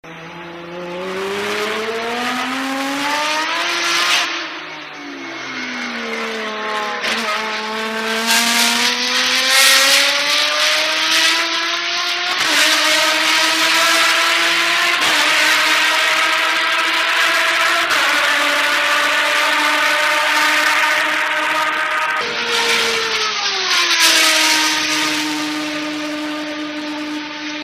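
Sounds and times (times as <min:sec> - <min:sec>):
racing cars: 0:00.0 - 0:27.6.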